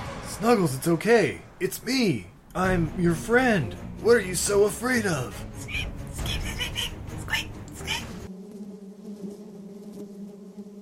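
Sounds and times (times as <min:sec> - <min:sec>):
speech: 0:00.4 - 0:06.5
swarm of bees buzzing: 0:07.8 - 0:10.8.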